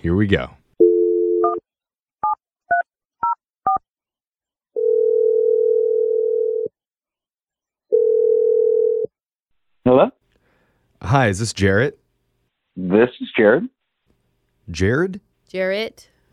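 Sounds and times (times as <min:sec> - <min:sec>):
speech: 0:00.0 - 0:00.6, 0:09.9 - 0:10.2, 0:11.0 - 0:12.0, 0:12.8 - 0:13.8, 0:14.7 - 0:16.3
long steady telephone ringing tones: 0:00.8 - 0:01.6, 0:04.8 - 0:06.7, 0:07.9 - 0:09.1
telephone dial tone: 0:04.8 - 0:06.7, 0:07.9 - 0:09.1.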